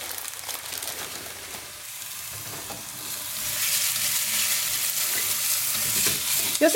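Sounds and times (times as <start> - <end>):
onions and celery sautéing in a pan with thyme sprigs and sage leaves: 0.0 - 6.7
stirring scrapes in a pan: 2.3 - 6.7.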